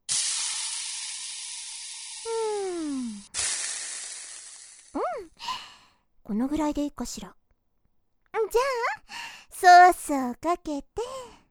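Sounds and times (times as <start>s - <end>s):
food sizzling on a hot grilling stone: 0.1s - 4.9s
speech: 6.3s - 7.4s, 8.5s - 8.9s, 9.6s - 11.3s.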